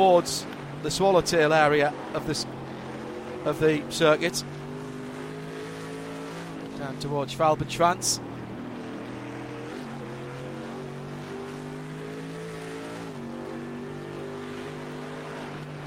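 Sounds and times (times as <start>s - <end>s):
speech: 0.0s - 2.6s, 3.4s - 4.6s, 6.8s - 8.3s
Mercedes AMG race car engine roaring on the Nürburgring Nordschleife during an endurance race: 0.0s - 15.8s.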